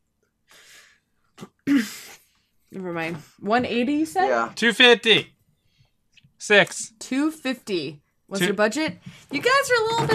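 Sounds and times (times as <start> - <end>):
person sneezing, partly stifled: 1.4 - 2.2
speech: 1.7 - 2.1, 2.7 - 5.4, 6.4 - 10.1.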